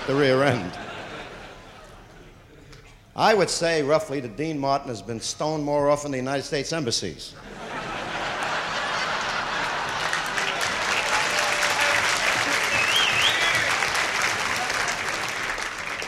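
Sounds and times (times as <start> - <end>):
laughter: 0.0 - 2.7, 7.4 - 16.0
speech: 0.1 - 0.9, 3.2 - 7.6
large audience applause: 8.2 - 16.0.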